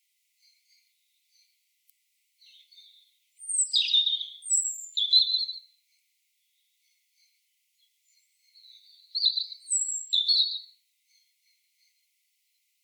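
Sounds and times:
European robin singing: 2.4s - 5.7s, 6.4s - 12.0s.

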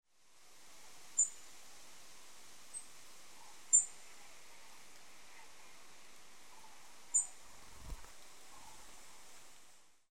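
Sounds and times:
light background hiss: 0.1s - 10.1s
European robin Erithacus rubecula ticking calls: 1.1s - 1.4s, 2.7s - 4.0s, 6.5s - 7.4s.

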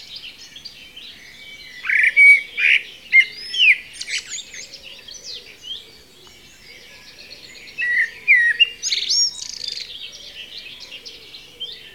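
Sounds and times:
common blackbird singing, Turdus merula: 0.0s - 11.9s.

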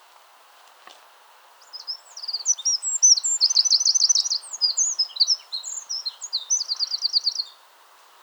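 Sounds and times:
low steady hiss: 0.0s - 8.2s
Eurasian wren Troglodytes troglodytes singing trills: 1.6s - 7.6s.

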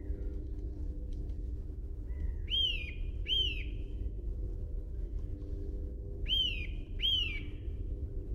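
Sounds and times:
constant low-pitched hum: 0.0s - 8.3s
Eurasian nuthatch Sitta europaea calling: 2.1s - 3.9s, 6.2s - 7.6s.

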